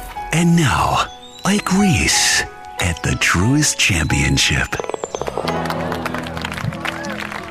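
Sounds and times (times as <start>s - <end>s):
speech: 0.4s - 5.6s
golf gallery cheering: 5.2s - 7.4s
golf gallery crowd clapping: 5.2s - 7.4s.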